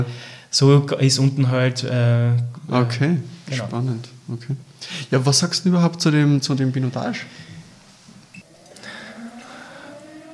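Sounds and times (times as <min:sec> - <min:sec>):
speech: 0:00.0 - 0:07.5
midday siren wailing: 0:08.4 - 0:10.3.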